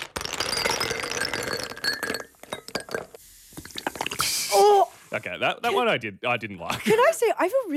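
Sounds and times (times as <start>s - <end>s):
ice cubes clinking in a glass: 0.0s - 4.2s
fizzy drink pouring into a glass over ice: 0.0s - 5.2s
speech: 5.2s - 7.7s.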